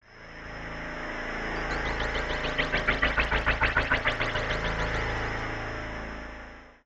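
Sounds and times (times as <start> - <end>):
spaceships: 1.3 - 5.8.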